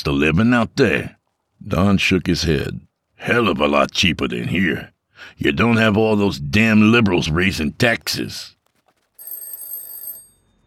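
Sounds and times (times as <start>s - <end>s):
speech: 0.0s - 8.6s
telephone ringing with an electronic bell in the early morning: 9.0s - 10.6s.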